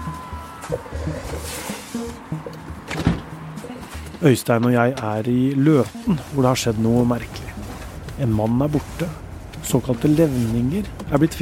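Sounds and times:
rustling movement of people getting into a car: 0.0 - 11.4
car door thunking shut at a roadside inn between Elverum and Hamar in Norway: 2.8 - 3.3
speech: 4.2 - 7.4, 8.2 - 11.4.

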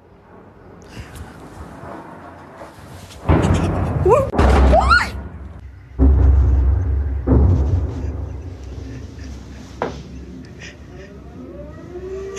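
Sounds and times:
heavy bombing explosions in Ukraine: 3.2 - 10.9
whistling rising tones: 11.1 - 12.3.

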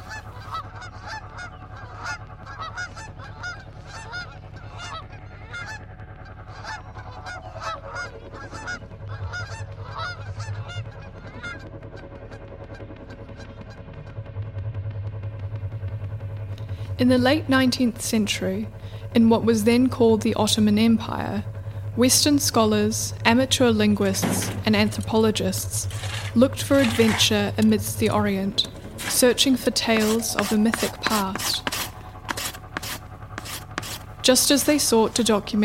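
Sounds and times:
flock of geese honking: 0.0 - 5.8, 6.4 - 11.7, 23.6 - 35.4
steady low droning rumble: 0.0 - 35.6
speech: 17.0 - 31.7, 34.3 - 35.6.

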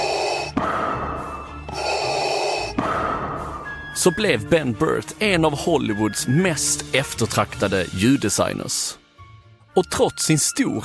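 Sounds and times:
mechanical respirator breathing sound effect from a film: 0.0 - 3.8
speech: 4.0 - 9.0, 9.8 - 10.8.

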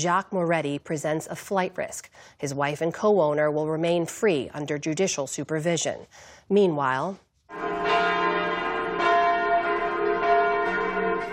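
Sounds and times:
speech: 0.0 - 8.2
church bells ringing in Switzerland on a national day of mourning: 7.5 - 11.3.

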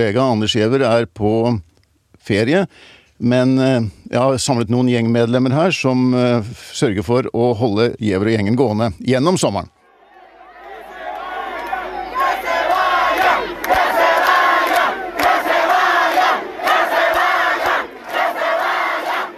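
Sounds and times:
speech: 0.0 - 9.8
large crowd cheering and chanting at a demonstration in Havana Cuba: 9.8 - 19.3.

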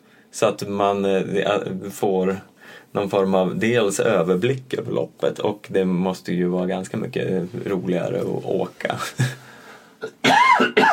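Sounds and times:
speech: 0.3 - 9.4
loud harsh throaty coughing: 10.0 - 10.9.

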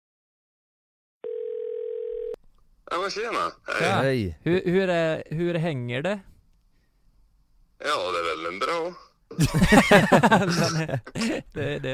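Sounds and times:
telephone ringback tone while calling someone: 1.2 - 2.4
faint noise: 1.4 - 11.9
speech: 2.9 - 6.3, 7.8 - 11.9
laughter: 9.3 - 11.9.

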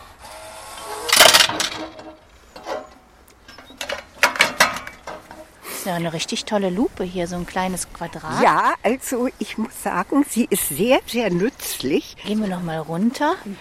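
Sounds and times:
coin dropped into a deposit vending machine that dispenses magnifiers: 1.1 - 2.0
speech: 5.9 - 13.5.

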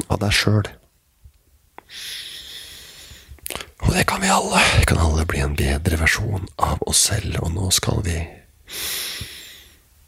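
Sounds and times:
speech: 0.1 - 0.8, 4.0 - 9.3
deep breath: 1.8 - 3.8, 8.7 - 9.9.

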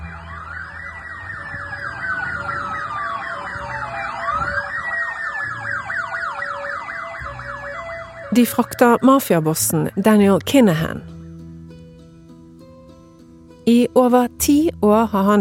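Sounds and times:
sirens of speeding armoured cars wailing: 0.0 - 11.0
engine rumble of fast-moving armoured cars: 0.0 - 12.4
speech: 8.4 - 11.2, 13.7 - 15.3.

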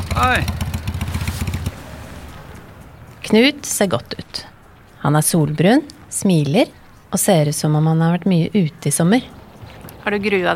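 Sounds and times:
motorcycle engine chugging: 0.0 - 4.2
speech: 0.2 - 0.6, 3.3 - 9.4, 10.0 - 10.5.

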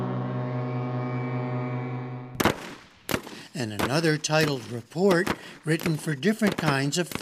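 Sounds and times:
ship foghorns played as music by ships' crews in Bergen Norway: 0.0 - 2.4
sudden sharp crack: 2.4 - 7.2
speech: 3.6 - 7.2.

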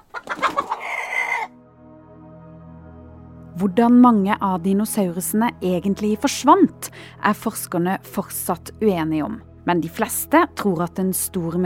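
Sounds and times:
chicken clucking: 0.0 - 1.5
speech: 3.6 - 11.6.

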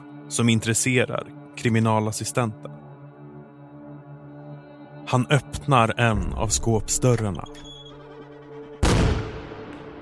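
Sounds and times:
speech: 0.3 - 2.8, 5.1 - 7.7
single sudden loud explosion: 8.8 - 9.7.

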